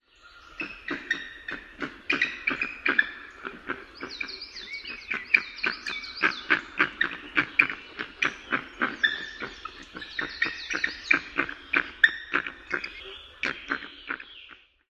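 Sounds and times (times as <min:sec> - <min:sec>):
bird alarm calls given in flight: 0:00.5 - 0:14.7.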